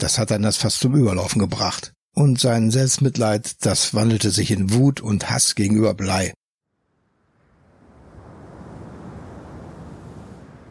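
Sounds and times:
speech: 0.0s - 6.4s
soft surf: 7.2s - 10.7s
wind blowing over a calm cool open sea: 7.2s - 10.7s.

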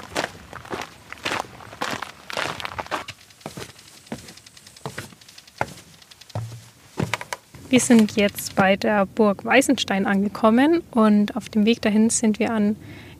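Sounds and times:
footsteps walking on a trail toward a castle ruin: 0.0s - 9.6s
speech: 7.7s - 13.1s.

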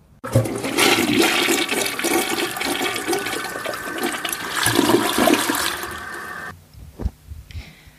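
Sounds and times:
toilet flushing: 0.0s - 6.5s
water dripping and refilling: 0.2s - 6.5s.

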